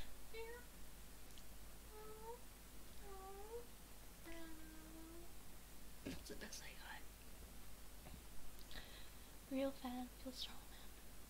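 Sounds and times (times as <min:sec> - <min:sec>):
faint hiss: 0:00.0 - 0:11.2
person imitating a cat meowing: 0:01.9 - 0:02.4, 0:03.0 - 0:05.3
speech: 0:06.3 - 0:07.1, 0:09.5 - 0:10.6.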